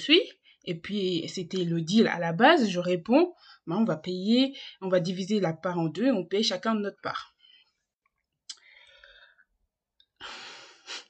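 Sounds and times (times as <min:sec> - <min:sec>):
speech: 0:00.0 - 0:07.3
deep breath: 0:08.6 - 0:09.5, 0:10.2 - 0:11.0.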